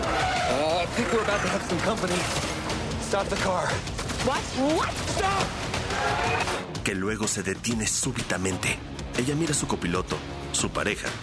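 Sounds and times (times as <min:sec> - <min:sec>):
car tires skidding while swerving hard: 0:00.0 - 0:02.5
speech: 0:01.0 - 0:11.2.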